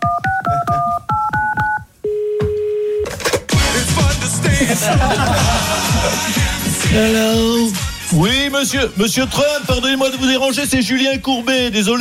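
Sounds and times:
telephone number being dialed with DTMF keypad tones: 0.0 - 3.1
laughter: 4.4 - 6.8
speech: 4.8 - 12.0.

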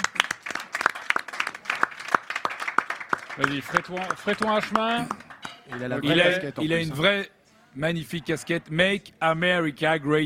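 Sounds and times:
scattered applause from a small crowd at a gathering: 0.0 - 6.3
speech: 3.4 - 10.2.

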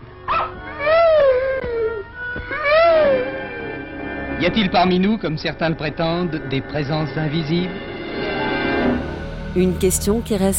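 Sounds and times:
agitated dog whimpering and howling: 0.2 - 3.6
dog yelp: 0.3 - 3.3
speech: 4.4 - 7.9, 9.5 - 10.5.

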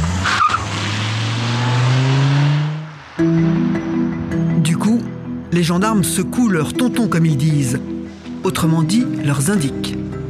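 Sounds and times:
car engine revving as the vehicle pulls off: 0.0 - 4.5
speech: 5.6 - 10.0.

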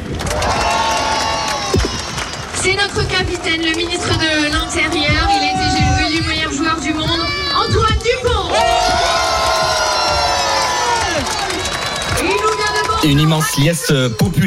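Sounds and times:
large crowd cheering and shouting for rugby players: 0.0 - 14.4
speech: 2.8 - 5.6, 13.0 - 14.4.

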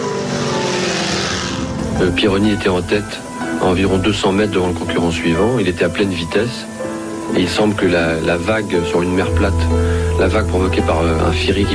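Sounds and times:
helicopter engine and rotor droning: 0.0 - 4.0
speech: 2.0 - 6.7, 7.3 - 11.7.

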